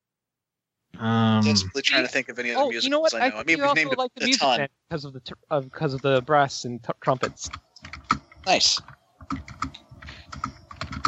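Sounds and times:
speech: 0:01.0 - 0:07.7, 0:08.5 - 0:10.6
typing on a computer keyboard: 0:07.2 - 0:11.0.

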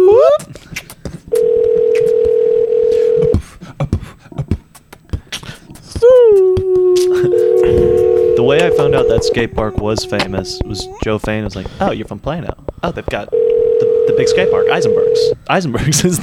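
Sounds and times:
outgoing phone call ringback tone buzzing: 0:01.3 - 0:03.4, 0:07.1 - 0:09.6, 0:13.3 - 0:15.4
people chatting: 0:02.9 - 0:16.2
speech: 0:09.2 - 0:13.4, 0:14.1 - 0:16.2.

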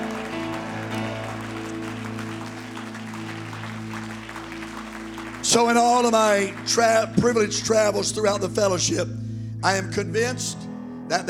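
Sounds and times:
crowd clapping hands in applause: 0:00.0 - 0:08.2
sustained organ-like chord humming: 0:00.0 - 0:11.2
speech: 0:05.5 - 0:11.2.

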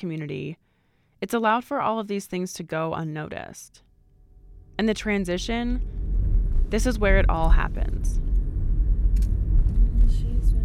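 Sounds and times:
speech: 0:00.0 - 0:03.9, 0:04.8 - 0:06.0, 0:06.7 - 0:08.2
low engine and road rumble from inside a moving car: 0:04.0 - 0:10.6.

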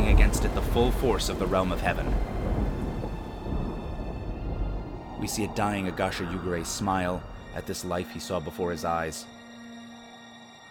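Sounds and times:
rain hiss: 0:00.0 - 0:07.8
thunder rumbling: 0:00.0 - 0:07.8
speech: 0:00.4 - 0:02.4, 0:05.2 - 0:09.4.

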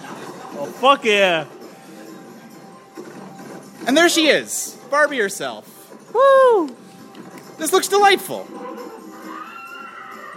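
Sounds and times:
steady video game bed: 0:00.0 - 0:10.3
speech: 0:00.6 - 0:01.6, 0:03.9 - 0:06.8, 0:07.6 - 0:08.6
horse whinnying in a horse-riding video game: 0:08.5 - 0:10.3.

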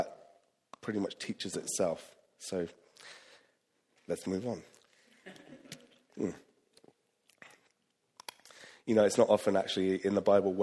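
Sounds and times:
speech: 0:00.8 - 0:03.2, 0:04.1 - 0:04.8, 0:06.2 - 0:06.5, 0:08.9 - 0:10.6
faint mouth and lip sounds: 0:04.7 - 0:08.6
person sipping a drink with slurp and gulp: 0:05.7 - 0:08.6.

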